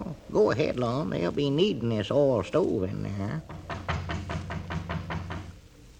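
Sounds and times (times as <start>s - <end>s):
low hum: 0.0s - 5.9s
speech: 0.4s - 3.6s
light soft knocking on a door: 3.4s - 5.6s.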